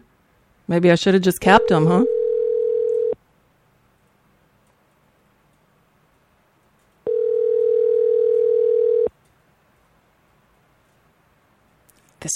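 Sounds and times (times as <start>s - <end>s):
speech: 0.7s - 2.2s
telephone dial tone while redialing: 1.6s - 3.2s, 7.1s - 9.1s.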